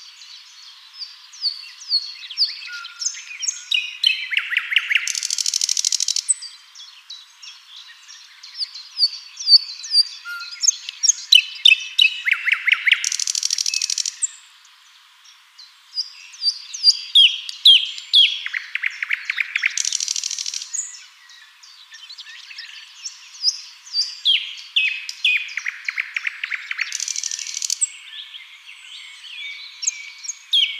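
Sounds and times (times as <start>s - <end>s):
common nightingale Luscinia megarhynchos song: 0.0s - 30.7s.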